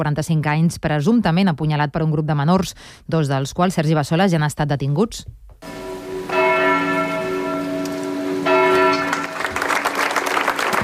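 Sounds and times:
speech: 0:00.0 - 0:05.7
church bell tolling: 0:05.6 - 0:10.0
crowd of people applauding at the doors of the town hall in Manresa: 0:08.7 - 0:10.8.

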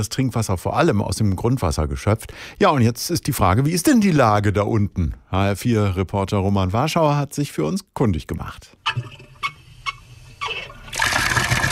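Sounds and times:
speech: 0:00.0 - 0:09.2
tap knocks and squeak: 0:08.8 - 0:10.8
water gushing from a tap: 0:09.9 - 0:11.7.

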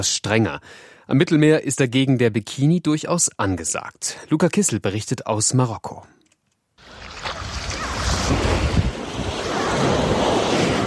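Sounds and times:
speech: 0:00.0 - 0:06.2
gusty wind noise over the microphone: 0:06.8 - 0:10.8
ocean waves rolling onto a beach: 0:06.8 - 0:10.8.

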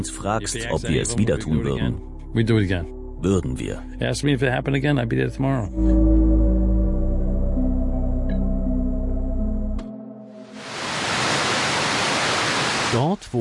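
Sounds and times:
speech: 0:00.0 - 0:06.4, 0:13.0 - 0:13.3
sustained low droning tones: 0:00.0 - 0:10.5
water cascading down four sides into a huge memorial pool: 0:10.5 - 0:13.2.

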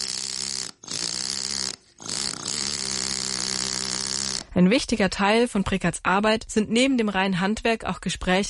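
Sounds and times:
compressed-air hammer working gravestone stone: 0:00.0 - 0:04.5
speech: 0:04.6 - 0:08.4.

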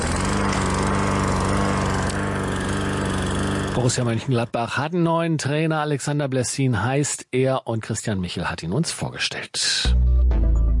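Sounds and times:
lawn mower engine running: 0:00.0 - 0:04.4
speech: 0:03.8 - 0:10.4.

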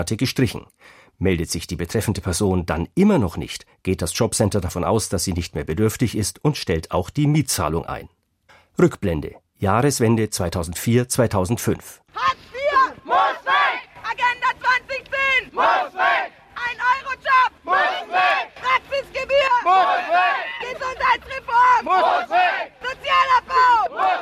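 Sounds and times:
speech: 0:00.0 - 0:08.2, 0:08.8 - 0:12.5
crowd chanting at a protest against government labour market reforms: 0:12.2 - 0:24.2.

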